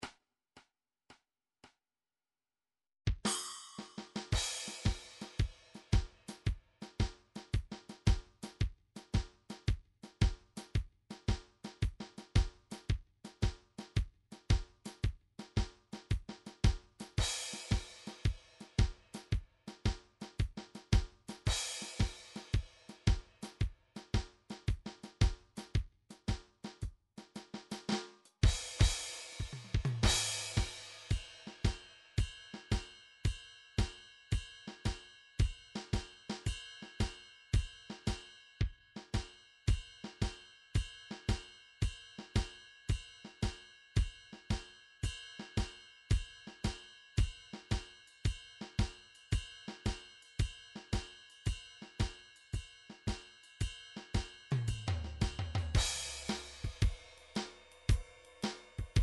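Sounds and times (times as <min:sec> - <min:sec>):
kick drum in a blues beat: 0:03.1 - 0:03.3, 0:04.3 - 0:27.0, 0:28.4 - 0:36.1, 0:37.0 - 0:51.1, 0:53.1 - 0:57.2, 0:57.9 - 0:59.0
swing ride cymbal in a blues beat: 0:03.3 - 0:07.9, 0:16.6 - 0:25.8, 0:27.7 - 0:59.0.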